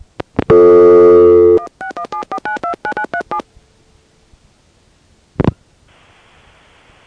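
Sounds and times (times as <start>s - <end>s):
loud buzzy low telephone tone in Massachusetts: 0.5s - 3.4s.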